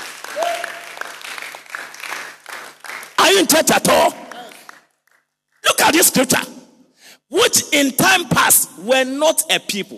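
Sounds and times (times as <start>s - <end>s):
church audience clapping: 0.0s - 5.6s
person shouting: 0.3s - 0.8s
speech: 3.4s - 4.2s, 5.9s - 6.6s, 7.3s - 9.9s.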